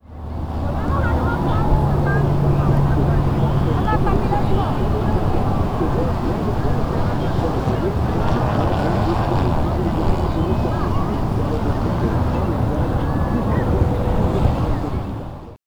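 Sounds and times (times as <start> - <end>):
street ambience: 0.0 - 15.6.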